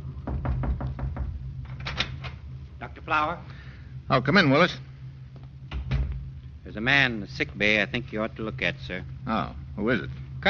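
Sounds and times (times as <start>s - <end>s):
low steady hum: 0.0s - 10.4s
knocking on a door: 0.2s - 1.5s
speech: 3.1s - 4.9s, 6.8s - 10.4s.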